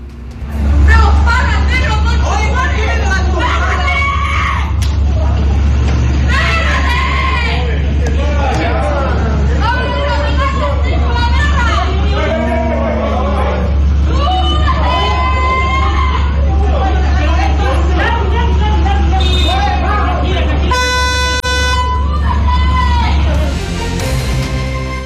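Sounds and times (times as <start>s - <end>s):
idling vehicles and traffic: 0.0s - 25.0s
agitated voices shouting in a street fight: 0.5s - 24.2s.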